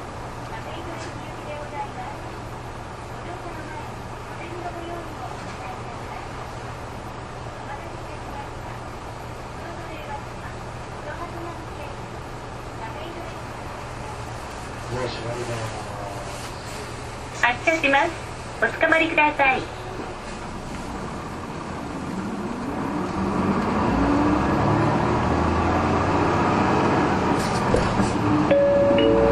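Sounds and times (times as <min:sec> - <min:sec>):
city bus interior engine rumble and idling hum: 0:00.0 - 0:29.2
voices: 0:00.4 - 0:20.9.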